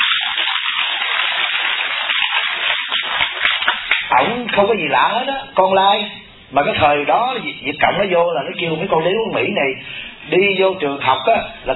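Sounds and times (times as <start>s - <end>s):
crowd applause at a Buddhist Medicine Buddha retreat in Conroe, Texas: 0.0s - 4.1s
speech: 4.1s - 11.7s.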